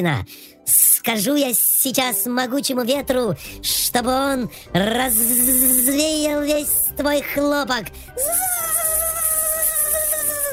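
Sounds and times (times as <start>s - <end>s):
speech: 0.0s - 8.5s
mosquito buzzing in a thin high-pitched whine: 5.1s - 6.0s, 8.2s - 10.5s.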